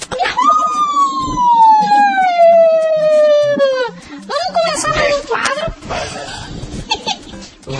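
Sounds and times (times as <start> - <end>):
laughter: 0.2 - 7.7
thin cheap-sounding ambulance siren wail: 0.3 - 4.0.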